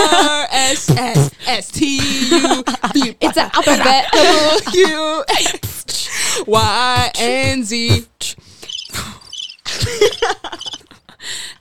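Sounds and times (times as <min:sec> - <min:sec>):
laughter: 0:00.0 - 0:01.3, 0:01.9 - 0:05.8, 0:08.9 - 0:11.2
speech: 0:00.2 - 0:08.1, 0:09.8 - 0:11.5
crickets chirping: 0:08.6 - 0:10.8.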